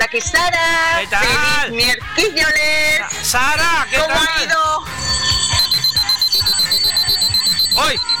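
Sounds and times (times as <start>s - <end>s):
speech: 0.1s - 5.2s, 7.8s - 8.1s
alarm clock ringing: 4.9s - 8.1s.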